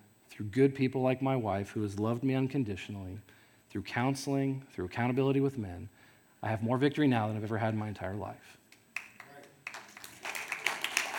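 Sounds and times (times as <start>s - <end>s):
speech: 0.4s - 8.6s
crowd clapping: 9.0s - 11.1s.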